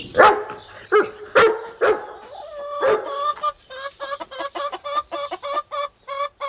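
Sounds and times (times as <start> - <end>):
dachshund barking in a henhouse: 0.2 - 3.2
hens squabbling over food clucking: 0.5 - 6.4.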